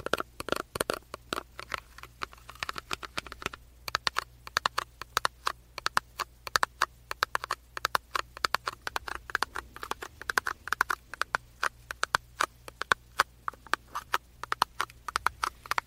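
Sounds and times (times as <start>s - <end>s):
fingers tapping and drumming on a cosmetics box: 0.0s - 1.8s, 2.5s - 15.8s
faint steady low hum: 0.0s - 15.8s.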